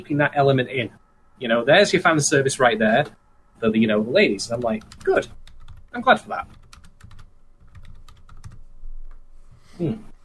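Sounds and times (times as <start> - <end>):
speech: 0.0 - 6.6, 9.8 - 10.1
typing on a computer keyboard: 4.5 - 8.7.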